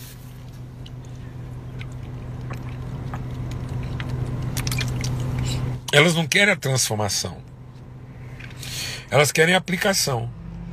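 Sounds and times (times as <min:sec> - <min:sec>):
steady low electrical hum: 0:00.0 - 0:10.7
person sipping water: 0:00.9 - 0:05.8
swallowing: 0:01.7 - 0:04.1
speech: 0:05.9 - 0:07.5, 0:09.1 - 0:10.4.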